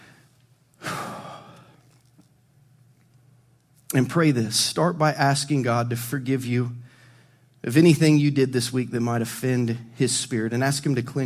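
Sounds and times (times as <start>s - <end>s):
deep breath from person leading prayer at a church service: 0.0s - 1.9s, 6.8s - 7.5s
speech: 3.9s - 6.8s, 7.6s - 11.2s.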